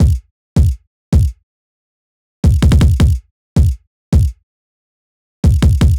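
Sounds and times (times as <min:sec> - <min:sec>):
equalized kick drum in a hyperpop beat: 0:00.0 - 0:01.4, 0:02.4 - 0:04.4, 0:05.4 - 0:05.9.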